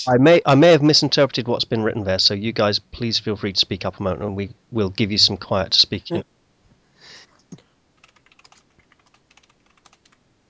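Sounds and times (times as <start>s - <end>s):
speech: 0.0s - 6.3s
typing on a computer keyboard: 8.0s - 10.2s.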